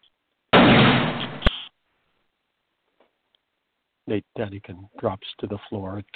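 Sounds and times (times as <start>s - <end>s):
loud gunshot: 0.5s - 1.7s
speech: 4.1s - 6.1s.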